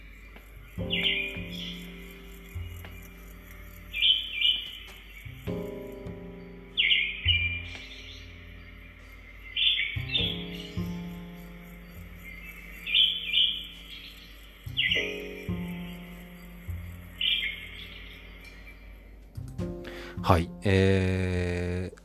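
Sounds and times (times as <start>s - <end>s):
songbird of a species that breeds only around Japan singing, played back from an online video: 0.0s - 22.0s
speech: 20.3s - 21.6s.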